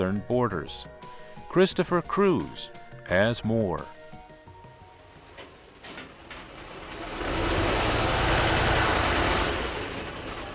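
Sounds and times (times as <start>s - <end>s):
speech: 0.0s - 4.0s
armored personnel carriers, tanks and military equipment loaded onto trucks: 4.8s - 10.5s.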